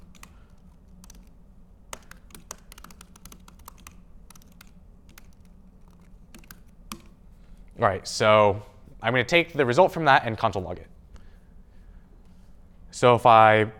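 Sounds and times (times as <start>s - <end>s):
typing on a computer keyboard while writing JavaScript code: 0.0s - 7.2s
speech: 7.8s - 10.9s, 13.0s - 13.7s.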